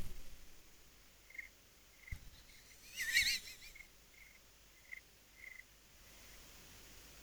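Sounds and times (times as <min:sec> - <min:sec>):
cricket chirping over a phone line: 0:01.1 - 0:06.4.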